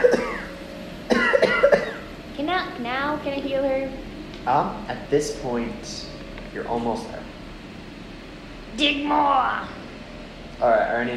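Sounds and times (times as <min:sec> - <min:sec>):
person coughing harshly: 0:00.0 - 0:00.5, 0:01.1 - 0:02.1
speech: 0:02.8 - 0:07.3, 0:08.8 - 0:09.8, 0:10.6 - 0:11.1.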